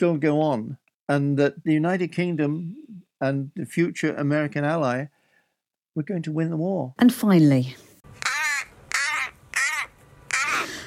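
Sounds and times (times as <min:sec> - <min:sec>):
speech: 0:00.0 - 0:05.2, 0:06.0 - 0:07.9
Common Raven harsh calls at the Tower of London: 0:08.1 - 0:10.8.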